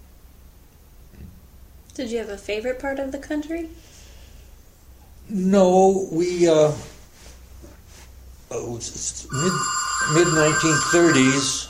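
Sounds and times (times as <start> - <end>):
speech: 2.0 - 3.9, 5.3 - 6.9, 8.5 - 11.6
short electronic telephone ring: 9.3 - 11.6.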